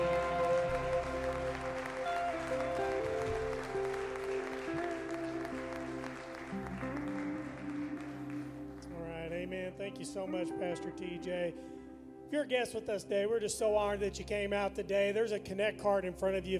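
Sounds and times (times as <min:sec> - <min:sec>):
congregation applauding with hand clapping: 0:00.0 - 0:10.8
held keyboard or organ chords: 0:00.0 - 0:16.5
speech: 0:10.0 - 0:16.5.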